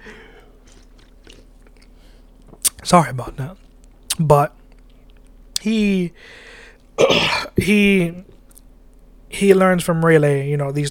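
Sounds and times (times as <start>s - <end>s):
person sipping and swallowing a drink: 0.0s - 2.8s
speech: 2.9s - 3.6s, 4.2s - 4.6s, 5.6s - 8.3s, 9.3s - 10.8s.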